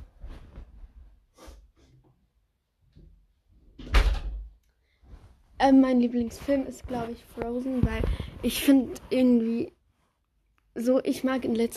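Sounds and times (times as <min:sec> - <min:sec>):
door being pushed shut: 0:03.8 - 0:04.5
soft shuffling and handling noises: 0:05.0 - 0:10.2
speech: 0:05.6 - 0:09.8, 0:10.8 - 0:11.7.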